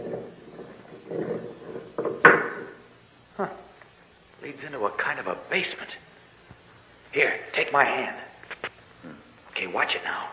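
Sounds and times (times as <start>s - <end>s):
heavy stone door with a ring grinding and scraping open: 0.0s - 2.9s
sharp knock: 2.0s - 2.8s
speech: 4.6s - 6.1s, 7.1s - 8.2s, 9.6s - 10.3s.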